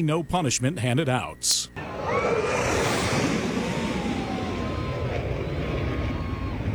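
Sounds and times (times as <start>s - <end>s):
speech: 0.0s - 2.8s
wind at a Florida beach: 0.0s - 6.7s
low-flying military jet roaring past over the water at a beach: 1.8s - 6.7s.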